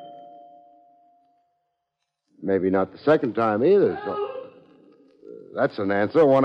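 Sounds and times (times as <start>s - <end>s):
doorbell single bright chime: 0.0s - 1.2s
speech: 2.5s - 4.3s, 5.5s - 6.4s.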